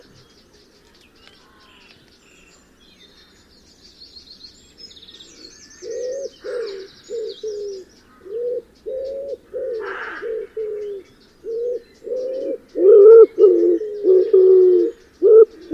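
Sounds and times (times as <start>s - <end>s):
wood pigeon cooing: 5.8s - 15.7s.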